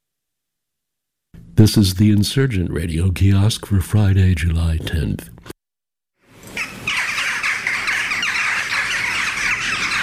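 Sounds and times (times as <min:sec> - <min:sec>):
speech: 0:01.6 - 0:05.6
jackdaws calling in a backyard in Wales: 0:06.3 - 0:10.0.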